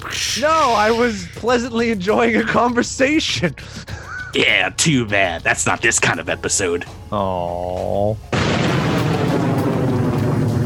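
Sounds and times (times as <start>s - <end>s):
speech: 0.1s - 8.3s
explosion roar of a blast in a spaceship docking bay: 8.3s - 10.6s.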